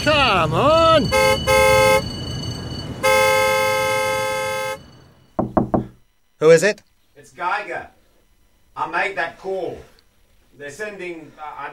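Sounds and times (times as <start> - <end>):
speech: 0.0 - 2.1, 6.4 - 8.0, 8.8 - 9.9, 10.6 - 11.7
car horns honking in traffic: 0.0 - 2.2, 2.8 - 6.0
traffic rumbling: 0.0 - 6.3.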